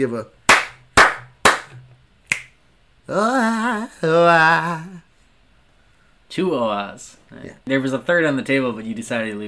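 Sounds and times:
speech: 0.0s - 0.4s, 3.1s - 4.9s, 6.3s - 9.4s
finger snap: 0.5s - 2.6s
hands clapping: 0.5s - 2.6s.

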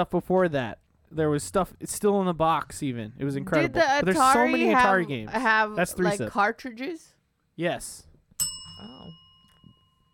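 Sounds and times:
speech: 0.0s - 8.1s
bell struck with a sharp bright ding: 8.4s - 10.1s.

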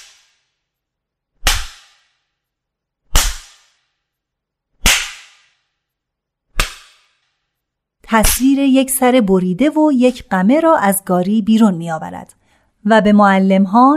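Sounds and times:
whip cracking hard against the ground: 0.0s - 0.5s, 1.4s - 2.3s, 3.1s - 4.0s, 4.8s - 5.7s, 6.5s - 7.4s
speech: 8.1s - 13.9s.

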